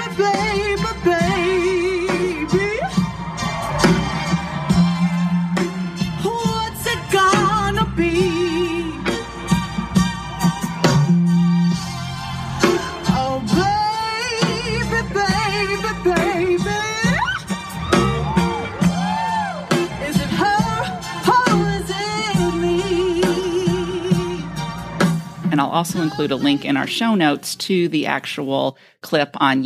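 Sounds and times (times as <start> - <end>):
woman singing live at a concert: 0.0 - 3.0, 6.1 - 9.3, 13.0 - 17.5, 19.1 - 24.5
full band accompaniment at a concert: 0.0 - 27.5
speech: 0.2 - 1.2, 25.8 - 29.6.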